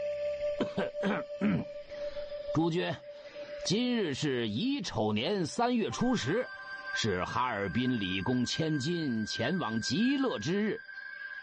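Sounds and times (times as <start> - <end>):
old man clearing his throat at a funeral ceremony: 0.6 - 1.7
speech: 2.6 - 10.9.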